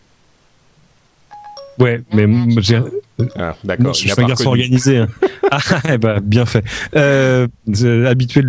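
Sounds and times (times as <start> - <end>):
faint noise: 0.0 - 8.4
electronic phone dialing tones as phone places call by voice recognition: 1.3 - 1.8
speech: 1.8 - 8.4
laughter: 4.2 - 6.0.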